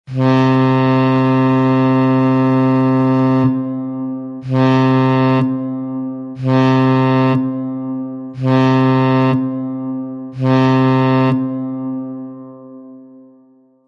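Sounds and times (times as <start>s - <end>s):
general danger warning sound signal at sea: 0.1s - 13.0s.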